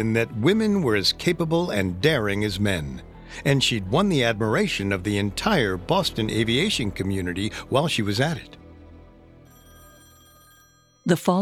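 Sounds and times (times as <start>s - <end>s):
speech: 0.0s - 8.6s, 11.1s - 11.3s
old-fashioned telephone bell ringing at an immigration house: 9.5s - 11.3s.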